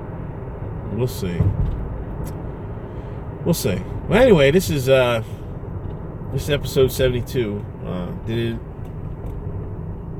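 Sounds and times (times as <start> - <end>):
moving car interior road and engine noise: 0.0 - 10.1
speech: 0.9 - 2.4, 3.4 - 5.4, 6.3 - 8.7.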